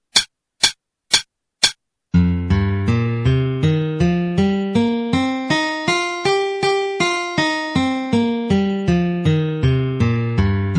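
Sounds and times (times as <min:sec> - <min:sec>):
C minor pentatonic melody: 0:02.2 - 0:10.7.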